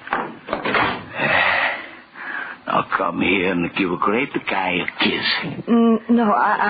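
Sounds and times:
wooden door knocks and rattles: 0.1 - 1.1
speech: 3.0 - 6.6.

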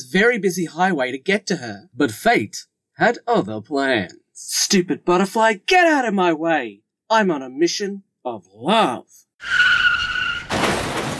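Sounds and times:
speech: 0.1 - 9.8
car crash: 9.4 - 11.1
car tire screech: 9.4 - 11.1.

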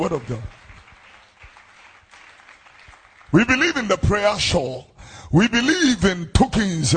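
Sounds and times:
speech: 0.0 - 0.6, 3.3 - 6.9
audience clapping hands in applause: 0.0 - 4.4.

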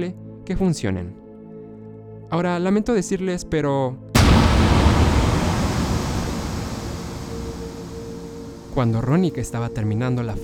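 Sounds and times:
speech: 0.0 - 1.2, 2.3 - 4.5, 8.8 - 10.4
huge explosion at the entrance to a room: 4.2 - 9.5.

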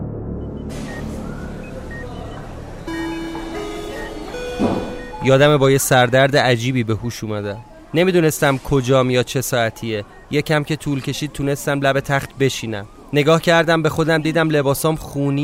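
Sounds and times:
car horn in a street: 0.7 - 5.5
speech: 5.2 - 15.4.

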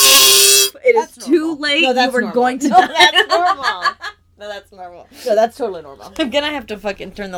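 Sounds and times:
fart whistle toy blown: 0.0 - 0.8
speech: 0.9 - 7.3
laughter: 2.6 - 4.1.

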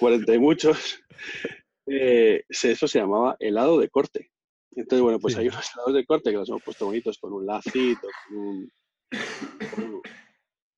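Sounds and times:
speech: 0.0 - 10.2
forceful sneezes: 7.7 - 8.2
laughter: 7.7 - 8.5.

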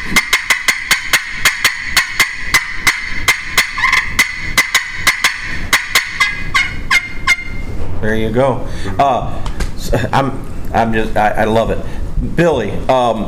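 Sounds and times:
hand call imitating excited hen turkey cutting: 0.0 - 7.7
speech: 8.0 - 13.2.

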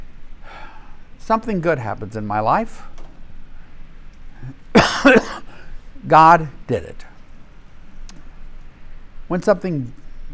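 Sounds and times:
speech: 1.3 - 3.0, 5.0 - 5.4, 6.0 - 7.1, 9.3 - 10.3
person coughing during a Bible teaching session: 4.4 - 5.7.

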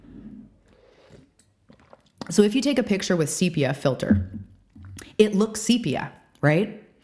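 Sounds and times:
person sipping coffee: 0.0 - 2.3, 4.2 - 5.1
wet slurping and mouth sounds: 0.6 - 2.5, 4.0 - 5.2
speech: 2.3 - 4.4, 5.2 - 7.0.

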